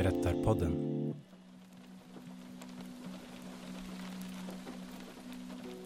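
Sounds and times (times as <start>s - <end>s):
speech: 0.2s - 0.9s
steady rain pattering against a window pane: 1.2s - 5.8s.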